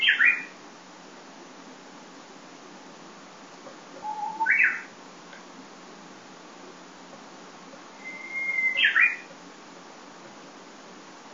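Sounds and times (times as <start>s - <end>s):
Japanese bush warbler singing: 0.0s - 0.6s, 4.0s - 5.0s, 7.9s - 9.3s
faint steady background hiss: 0.0s - 11.3s.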